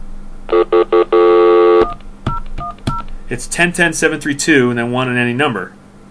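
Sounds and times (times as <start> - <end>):
steady landline telephone tone: 0.5 - 2.0
speech: 3.3 - 5.8.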